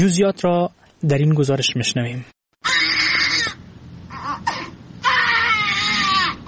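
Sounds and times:
speech: 0:00.0 - 0:02.8
newborn babies born addicted to drugs crying: 0:02.6 - 0:06.4.

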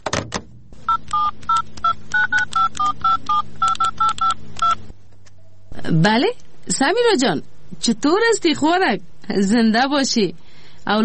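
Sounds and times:
telephone keypad dialing tones: 0:00.9 - 0:04.8
speech: 0:05.9 - 0:11.0.

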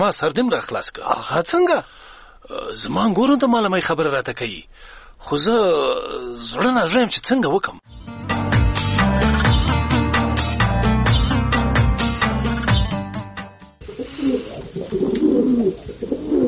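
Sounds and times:
speech: 0:00.0 - 0:08.0, 0:14.8 - 0:16.4
loud rhythmic music: 0:07.9 - 0:13.8
Baghdadi and Shirazi pigeons cooing: 0:13.8 - 0:16.4.

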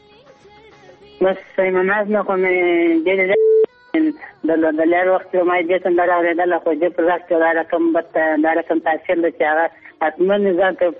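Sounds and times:
speech: 0:01.2 - 0:10.9
telephone ringing on an unanswered call: 0:03.1 - 0:03.7.

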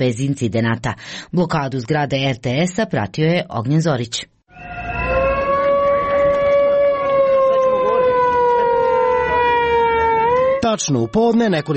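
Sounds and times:
speech: 0:00.0 - 0:04.7, 0:10.7 - 0:11.7
sirens wailing at an opposition street protest outside the state television building in Serbia: 0:04.5 - 0:11.7.

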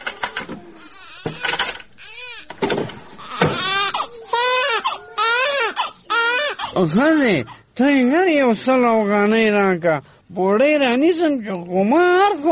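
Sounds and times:
baby crying indoors in a room: 0:00.7 - 0:02.5, 0:03.2 - 0:07.6
speech: 0:06.8 - 0:12.5.

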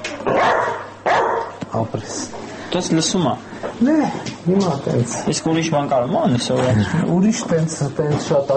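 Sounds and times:
dog barking on command: 0:00.3 - 0:01.6
speech: 0:02.7 - 0:08.5.

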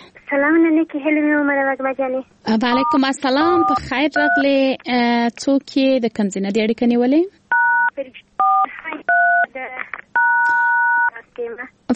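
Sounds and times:
speech: 0:00.3 - 0:07.4, 0:11.4 - 0:11.9
telephone keypad two-tone beeps during a phone call: 0:07.5 - 0:09.5, 0:10.2 - 0:11.1.

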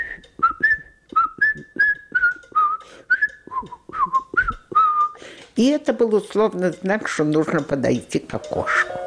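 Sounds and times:
person whistling a classical fugue melody: 0:00.0 - 0:05.2
speech: 0:05.6 - 0:08.9.

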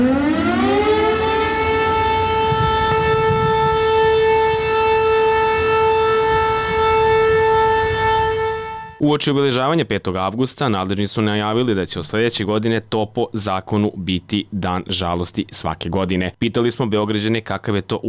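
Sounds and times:
civil defense siren in Kragujevac wailing: 0:00.0 - 0:09.0
low rumbling: 0:00.0 - 0:09.0
speech: 0:09.2 - 0:18.0.

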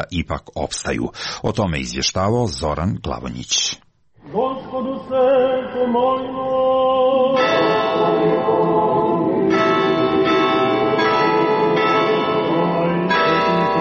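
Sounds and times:
speech: 0:00.0 - 0:07.7
church bells ringing for prayer: 0:07.3 - 0:13.8.

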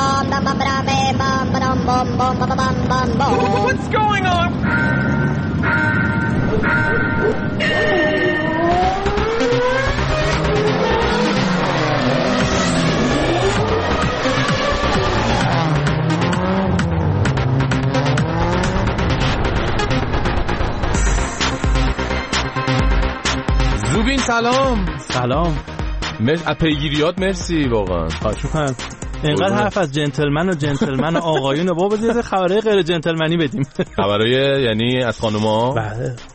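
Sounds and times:
race car engines revving hard and passing: 0:00.0 - 0:24.1
speech: 0:01.9 - 0:06.0, 0:24.3 - 0:36.3
laughter: 0:30.5 - 0:32.4, 0:33.4 - 0:34.4.

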